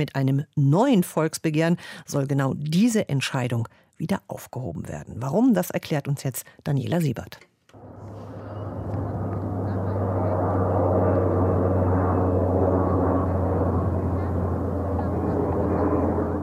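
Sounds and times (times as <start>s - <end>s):
speech: 0.0s - 7.5s
airplane engine drone passing high overhead: 7.7s - 16.4s
low hum: 7.7s - 16.4s.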